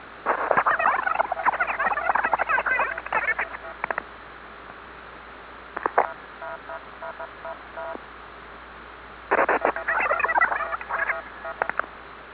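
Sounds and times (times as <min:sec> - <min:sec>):
Czech military diplomatic vocoder voice scrambler: 0:00.3 - 0:04.0, 0:05.8 - 0:08.0, 0:09.3 - 0:11.8.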